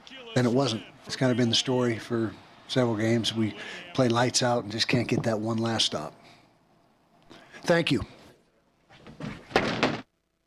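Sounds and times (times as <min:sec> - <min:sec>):
speech: 0:00.3 - 0:06.3, 0:07.6 - 0:08.2
thrown chair slamming down with loud sharp banging impacts: 0:08.9 - 0:10.1.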